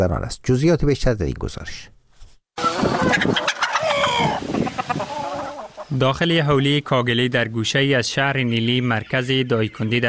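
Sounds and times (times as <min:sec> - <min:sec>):
speech: 0:00.0 - 0:02.0, 0:02.6 - 0:03.6, 0:05.9 - 0:10.0
rooster-like crow: 0:02.6 - 0:05.8
over 1,000 hens clucking and squawking in a yard in Nili, Daykundi: 0:02.6 - 0:06.2.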